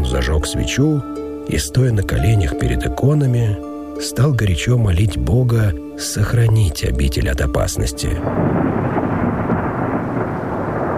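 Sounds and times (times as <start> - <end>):
speech: 0.1 - 8.8
rolling thunder following a dry crack of lightning: 8.3 - 10.9.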